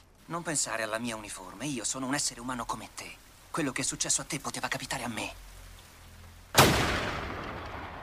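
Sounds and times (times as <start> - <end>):
speech: 0.3 - 5.5
gunshot from an action movie trailer: 6.6 - 8.0.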